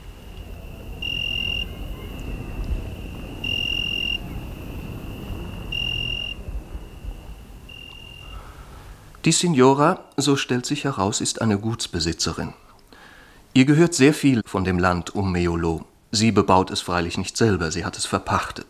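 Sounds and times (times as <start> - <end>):
crickets chirping in a garden on a warm evening in a village near Meolo, Italy: 0.0 - 9.2
low constant rumble: 0.0 - 9.3
speech: 9.2 - 12.7, 13.6 - 18.6.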